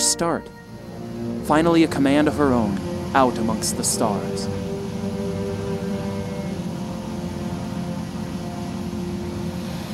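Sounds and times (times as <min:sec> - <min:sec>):
shuttle engines roaring during a landing approach: 0:00.0 - 0:09.9
speech: 0:00.2 - 0:00.6, 0:01.2 - 0:04.7.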